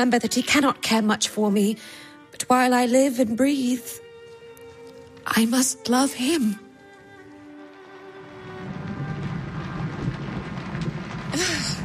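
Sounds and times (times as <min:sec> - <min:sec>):
speech: 0:00.0 - 0:04.0, 0:05.2 - 0:06.6
steady rain hissing: 0:04.0 - 0:11.8
low rumbling undertone: 0:06.6 - 0:11.8.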